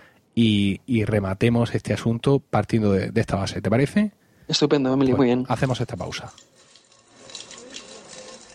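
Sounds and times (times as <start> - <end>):
speech: 0.4 - 6.6
cider poured from a height into a glass the Asturian way: 6.0 - 8.5.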